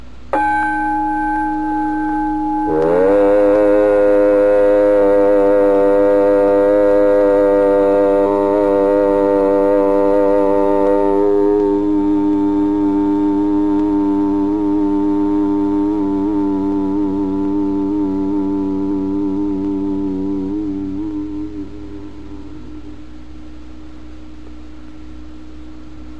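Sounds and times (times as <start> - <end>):
group of voices humming in a steady low drone: 0.0 - 26.1
gong ringing with a single strike: 0.3 - 5.8.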